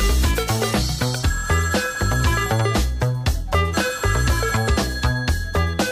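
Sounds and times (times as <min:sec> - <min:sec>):
synth-pop song: 0:00.0 - 0:05.9
telephone-like ringing tone in a synth-pop song: 0:01.2 - 0:05.9.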